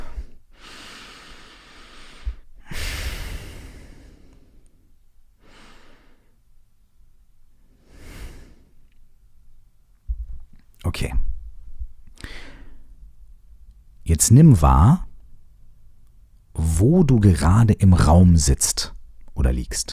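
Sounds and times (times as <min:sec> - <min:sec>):
slow deep breaths during a guided breathing exercise: 0:00.0 - 0:06.5, 0:07.5 - 0:09.3, 0:11.5 - 0:14.0
speech: 0:11.0 - 0:11.2, 0:14.1 - 0:15.0, 0:16.8 - 0:19.9.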